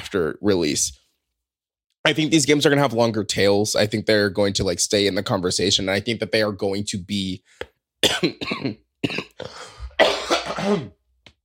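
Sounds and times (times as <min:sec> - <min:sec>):
speech: 0:00.1 - 0:01.0, 0:02.0 - 0:11.0
person clearing phlegm from throat: 0:08.0 - 0:11.0
person coughing harsh wet coughs: 0:08.0 - 0:11.0.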